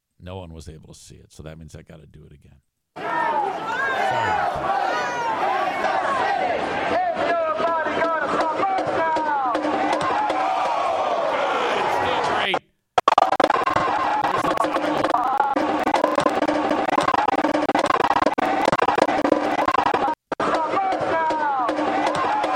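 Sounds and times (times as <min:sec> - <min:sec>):
speech: 0:00.2 - 0:05.2
large crowd shouting and cheering: 0:03.0 - 0:12.6, 0:13.4 - 0:22.5.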